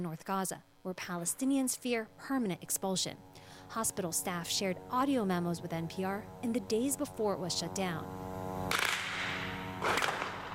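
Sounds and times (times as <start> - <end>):
speech: 0.0 - 8.3
steady low droning hum: 0.0 - 10.5
gunfire bursts: 8.7 - 10.5.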